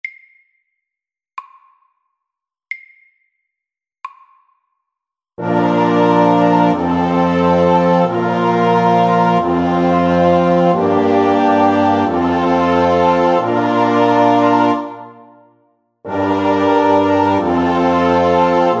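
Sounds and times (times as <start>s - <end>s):
slow chromatic chorale: 5.4s - 15.5s, 16.1s - 18.7s.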